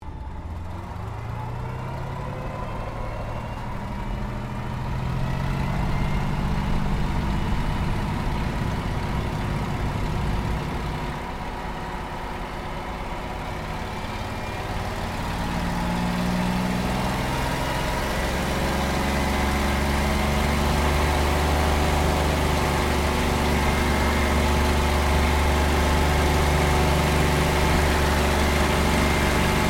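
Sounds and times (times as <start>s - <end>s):
P-40 Kittyhawk aircraft takeoff heard from interior: 0.0s - 29.6s.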